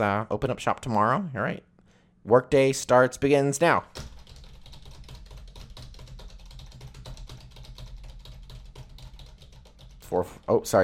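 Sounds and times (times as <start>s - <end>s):
speech: 0.0s - 4.1s, 10.1s - 10.8s
low hum: 0.0s - 10.8s
fingers typing rapidly on a computer keyboard: 4.0s - 10.2s.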